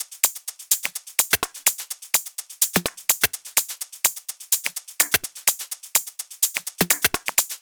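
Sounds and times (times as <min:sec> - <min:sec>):
126 BPM drum beat: 0:00.0 - 0:07.5.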